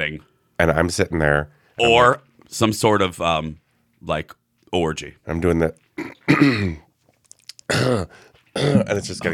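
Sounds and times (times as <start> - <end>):
speech: 0.0 - 6.8, 7.7 - 9.3
person coughing in a coughing fit: 6.0 - 6.9, 7.7 - 9.0
person breathing: 8.1 - 8.5.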